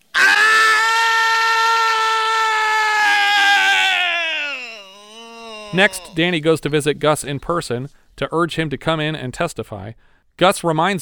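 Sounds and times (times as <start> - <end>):
man screaming in anguish: 0.0 - 6.2
speech: 5.7 - 11.0.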